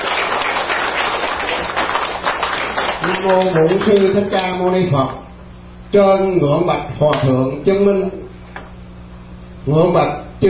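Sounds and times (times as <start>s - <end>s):
crowd clapping at a Buddhist temple to welcome a senior monk: 0.0s - 4.6s
speech: 3.2s - 5.2s, 5.9s - 8.2s, 9.6s - 10.4s.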